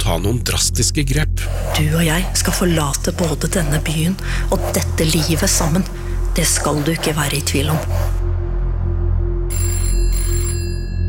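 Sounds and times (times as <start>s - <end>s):
speech: 0.1s - 8.2s
telephone ringing with an electronic trill: 9.5s - 11.0s.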